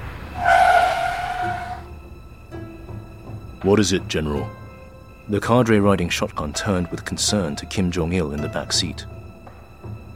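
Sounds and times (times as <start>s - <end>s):
car tires screeching from sudden braking in Pyongyang streets: 0.0s - 1.9s
low road rumble: 0.0s - 3.5s
speech: 3.6s - 4.6s, 5.3s - 9.2s.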